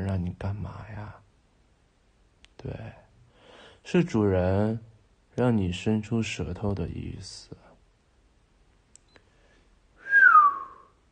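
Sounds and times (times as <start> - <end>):
speech: 2.6 - 3.0, 3.8 - 7.7
short whistle blown as a signal: 10.0 - 11.0.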